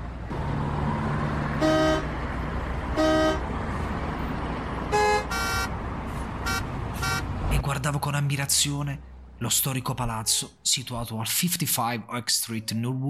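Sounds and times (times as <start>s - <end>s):
busy street traffic in New York rumbling: 0.0s - 12.9s
car horns honking: 1.5s - 2.2s, 2.9s - 3.5s, 4.8s - 5.8s, 6.4s - 7.4s, 10.1s - 10.6s
speech: 7.9s - 13.0s.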